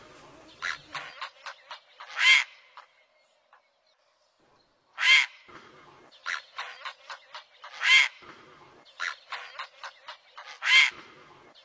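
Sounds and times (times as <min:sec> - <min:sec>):
great blue heron harsh buzzy squawks: 0:00.6 - 0:02.9, 0:05.0 - 0:11.5.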